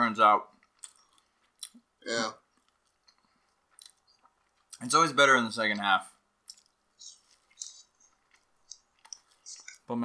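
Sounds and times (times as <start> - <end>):
speech: 0.1 - 0.6, 2.0 - 2.4, 4.8 - 6.1, 9.9 - 10.0
wet chewing of food: 0.6 - 4.8, 6.4 - 9.9
small mouth clicks: 6.5 - 9.8.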